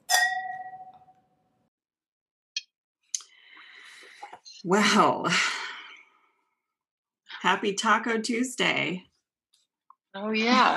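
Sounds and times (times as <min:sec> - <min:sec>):
glasses clinking in a toast: 0:00.0 - 0:01.2
speech: 0:04.6 - 0:05.6, 0:07.5 - 0:09.1, 0:10.1 - 0:10.7.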